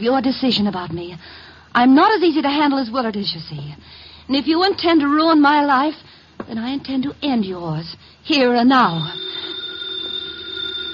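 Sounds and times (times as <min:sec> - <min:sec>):
speech: 0:00.0 - 0:09.4
house telephone ringing: 0:08.8 - 0:10.9.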